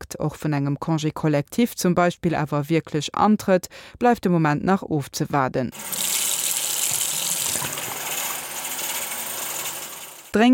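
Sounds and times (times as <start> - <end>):
speech: 0.2 - 6.3, 10.3 - 10.5
water running from a tap: 5.7 - 10.4.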